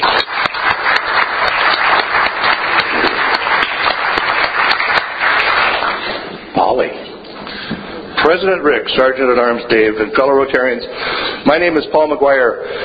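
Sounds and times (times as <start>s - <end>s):
applause at a Rotary club meeting welcoming a guest speaker: 0.0s - 6.5s
speech: 8.3s - 12.8s.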